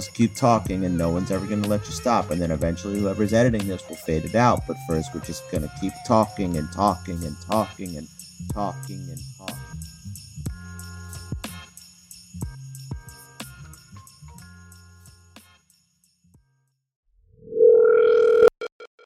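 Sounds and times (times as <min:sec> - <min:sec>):
speech: 0:00.0 - 0:09.8
phone ringing with an electronic chiming melody: 0:17.5 - 0:18.8.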